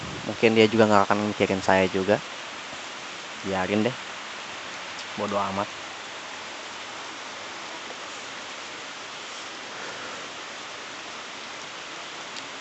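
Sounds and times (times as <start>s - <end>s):
steady rain falling: 0.0s - 12.5s
speech: 0.3s - 2.4s, 3.4s - 4.1s, 5.2s - 5.8s.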